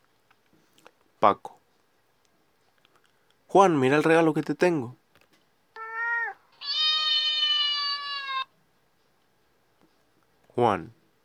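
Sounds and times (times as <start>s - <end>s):
speech: 1.2s - 1.5s, 3.5s - 5.0s, 10.6s - 11.0s
cat meowing: 5.8s - 8.5s.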